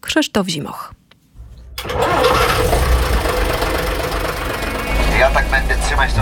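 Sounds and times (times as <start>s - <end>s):
speech: 0.1s - 1.0s, 5.2s - 6.2s
vintage Jelcz 043 bus diesel engine cranking and idling in Łódź, Poland: 1.4s - 6.2s.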